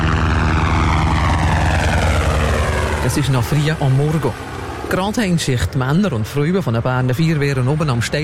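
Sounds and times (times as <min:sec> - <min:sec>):
firefighting helicopter rotor throbbing over a steep slope during a wildfire drill: 0:00.0 - 0:08.2
speech: 0:03.1 - 0:08.2.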